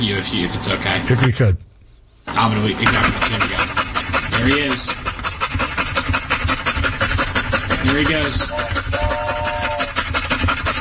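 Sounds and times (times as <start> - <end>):
speech: 0.0 - 1.7, 2.3 - 5.1, 7.8 - 9.1
dog panting: 2.2 - 10.7.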